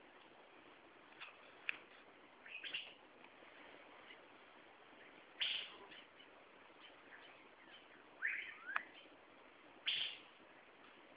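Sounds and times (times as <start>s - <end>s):
steady hiss: 0.0s - 11.1s
Asian fairy-bluebird giving short whistled notes: 5.4s - 5.7s, 7.1s - 9.0s, 9.8s - 10.3s.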